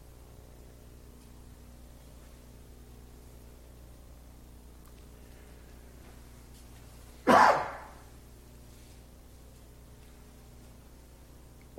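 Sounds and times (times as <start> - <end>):
faint low hum: 0.0 - 11.7
single sharp loud cough: 7.3 - 8.0.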